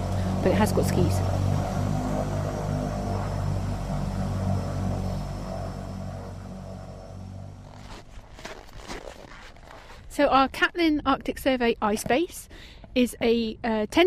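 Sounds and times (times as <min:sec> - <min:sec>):
Twin Otter small propeller plane engine droning inside the cabin: 0:00.0 - 0:08.6
speech: 0:00.4 - 0:01.4, 0:10.2 - 0:14.0.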